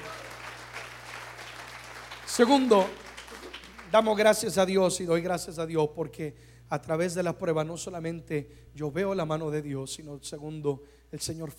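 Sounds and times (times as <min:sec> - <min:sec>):
large group applauding: 0:00.0 - 0:04.6
speech: 0:02.4 - 0:03.0, 0:03.9 - 0:11.5.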